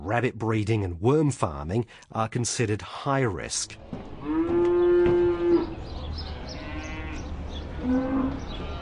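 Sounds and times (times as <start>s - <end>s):
low rumble of livestock sale yard noise: 0.0s - 8.7s
speech: 0.1s - 4.0s, 7.8s - 8.6s
cow mooing at a livestock sale yard in Hamilton: 4.2s - 5.8s, 6.4s - 8.7s.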